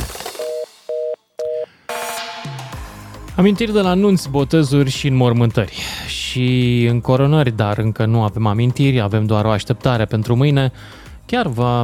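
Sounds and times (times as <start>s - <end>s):
telephone busy tone beeps after hang-up: 0.4s - 1.7s
speech: 3.4s - 11.8s.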